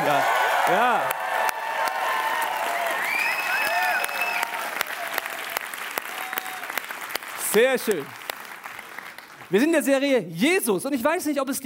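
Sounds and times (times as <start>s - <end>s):
crowd whooping: 0.0s - 6.9s
live crowd applauding a band: 0.0s - 10.0s
speech: 0.2s - 1.2s, 7.6s - 8.2s, 9.5s - 11.6s
crowd high whistles: 3.0s - 4.6s.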